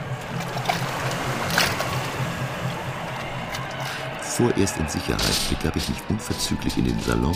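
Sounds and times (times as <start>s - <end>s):
oars of a small boat splashing in water: 0.0s - 4.0s
speech: 4.4s - 7.3s.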